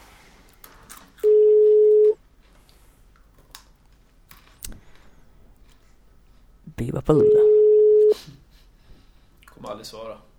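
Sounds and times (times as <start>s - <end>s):
telephone ringback tone on an outgoing call: 1.2s - 2.2s, 7.1s - 8.2s
speech: 7.1s - 7.5s, 9.8s - 10.3s.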